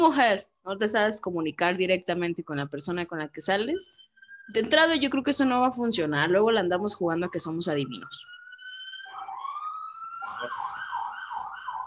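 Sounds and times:
speech: 0:00.0 - 0:08.4, 0:10.4 - 0:10.8
emergency sirens wailing outside: 0:03.8 - 0:05.0, 0:06.1 - 0:11.8.

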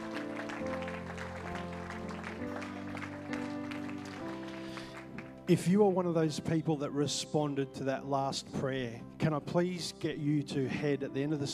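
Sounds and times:
audience clapping: 0:00.0 - 0:05.6
sustained music chords: 0:00.0 - 0:11.5
speech: 0:05.5 - 0:11.5.

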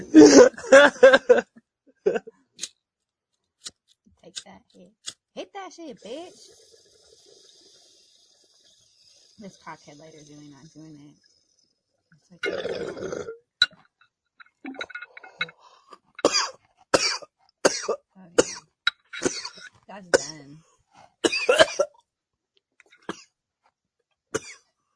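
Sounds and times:
person coughing: 0:00.0 - 0:01.4, 0:16.2 - 0:18.6, 0:19.2 - 0:20.4, 0:21.3 - 0:21.9, 0:24.4 - 0:24.6
laughter: 0:00.0 - 0:02.3
speech: 0:09.4 - 0:11.3, 0:12.3 - 0:13.3.

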